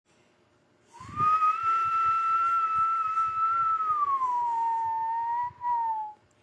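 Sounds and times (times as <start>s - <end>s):
warning whistle: 1.0s - 6.2s.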